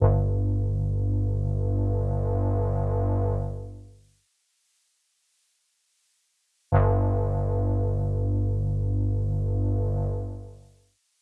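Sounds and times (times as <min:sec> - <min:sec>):
synth bass in G minor: 0:00.0 - 0:03.9, 0:06.7 - 0:10.6.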